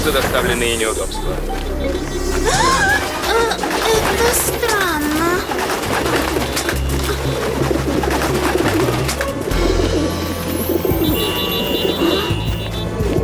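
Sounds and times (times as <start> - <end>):
speech: 0.0 - 6.7
crowd of pigeons cooing: 2.9 - 12.6.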